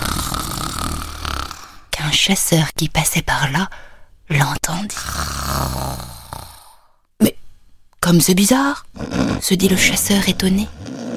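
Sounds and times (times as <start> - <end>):
loud snoring sound effect: 0.0 - 1.8, 5.0 - 6.9, 9.0 - 11.1
speech: 2.2 - 6.2, 8.1 - 11.0.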